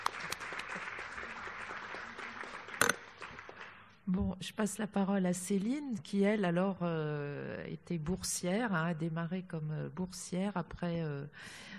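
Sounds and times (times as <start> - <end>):
crowd applauding: 0.0 - 3.9
speech: 4.1 - 11.7.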